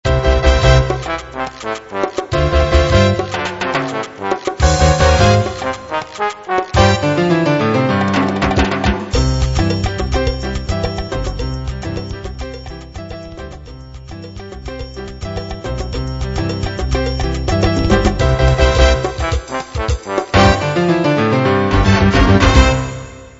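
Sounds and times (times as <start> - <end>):
jazz mambo music: 0.0 - 23.3.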